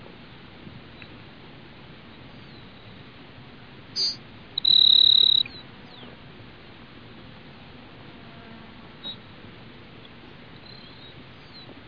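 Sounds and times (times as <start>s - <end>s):
Grassland Sparrow Ammodramus humeralis buzzy song: 4.0s - 6.2s, 10.6s - 11.7s.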